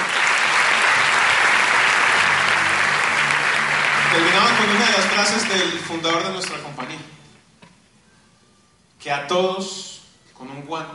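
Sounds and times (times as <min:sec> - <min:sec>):
room full of people applauding: 0:00.0 - 0:06.5
speech: 0:04.6 - 0:07.2, 0:09.0 - 0:10.9.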